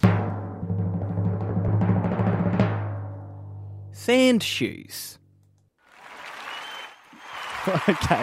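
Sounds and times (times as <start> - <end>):
drum roll sound effect: 0.0 - 3.6
speech: 4.0 - 5.2, 7.6 - 8.2
laughter: 7.5 - 8.2.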